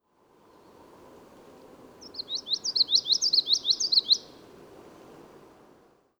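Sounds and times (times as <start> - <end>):
common yellowthroat: 2.0 - 4.4.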